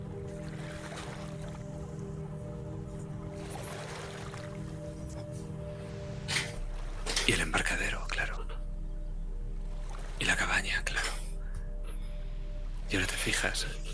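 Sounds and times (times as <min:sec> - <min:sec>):
water lapping against the lakeshore: 0:00.0 - 0:08.6, 0:09.5 - 0:10.6
low hum: 0:00.0 - 0:13.9
speech: 0:12.9 - 0:13.8.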